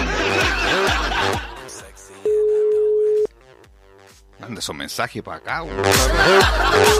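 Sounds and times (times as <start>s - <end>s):
people chuckling and laughing: 0.0s - 1.9s, 6.0s - 6.9s
ringback tone of an unanswered landline call: 2.3s - 3.3s
speech: 4.6s - 6.9s.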